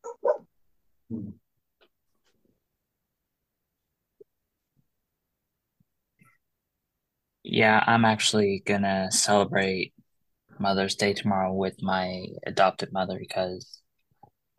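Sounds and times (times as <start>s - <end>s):
dogs barking, one higher and one deeper: 0.0s - 0.5s
speech: 7.6s - 10.0s, 10.6s - 13.8s.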